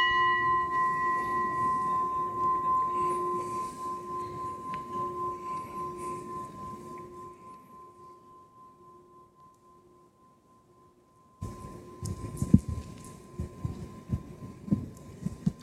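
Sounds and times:
gong ringing with long metallic hum: 0.0 - 8.2, 11.4 - 15.0.

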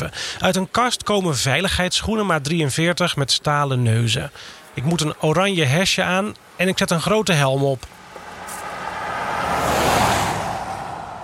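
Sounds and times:
speech: 0.0 - 8.0
car driving by on the way to the harbour of Den Oever: 7.9 - 11.2.

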